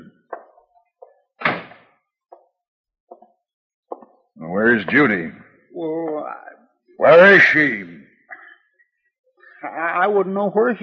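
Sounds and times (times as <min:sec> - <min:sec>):
door shutting with a solid loud thud: 0:01.4 - 0:01.9
speech: 0:04.6 - 0:07.9, 0:10.0 - 0:10.8.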